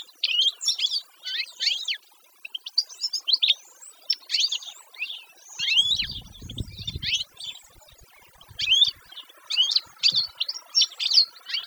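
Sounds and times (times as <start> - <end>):
canary song with trilled phrases: 0.0 - 11.6
low rumble: 6.0 - 7.2.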